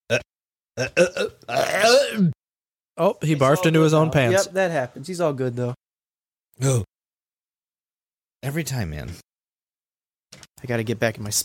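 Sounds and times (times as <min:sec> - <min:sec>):
burping: 0:00.1 - 0:02.4
speech: 0:00.1 - 0:02.4, 0:03.0 - 0:05.8, 0:06.6 - 0:06.9, 0:08.4 - 0:09.3, 0:10.6 - 0:11.4.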